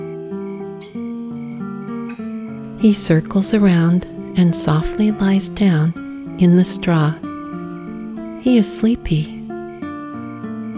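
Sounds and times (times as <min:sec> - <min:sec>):
crickets chirping at dusk: 0:00.0 - 0:10.7
speech: 0:02.8 - 0:07.3, 0:08.4 - 0:09.4.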